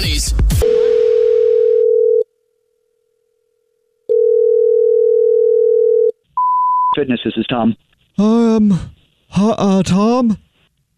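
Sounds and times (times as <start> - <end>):
telephone ringback tone of a call to a gym: 0.6 - 2.2, 4.1 - 6.1
speech: 7.0 - 10.5.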